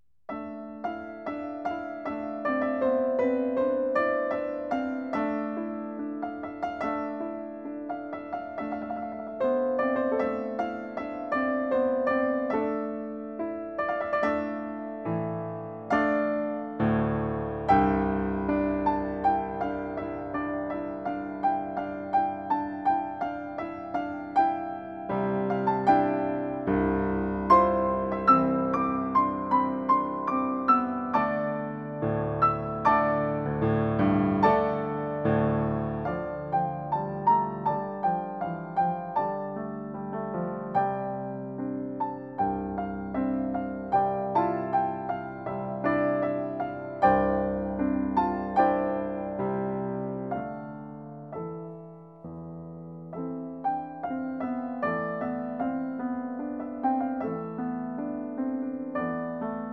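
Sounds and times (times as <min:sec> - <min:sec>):
piano piece arranged from a Kurdish song for two flutes: 0:00.0 - 0:59.7.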